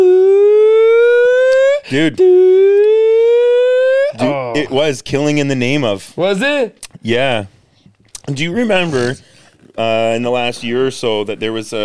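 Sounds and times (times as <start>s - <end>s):
voice imitating the wailing siren from a song: 0.0s - 4.6s
speech: 1.9s - 2.8s, 4.2s - 7.6s, 8.3s - 11.8s.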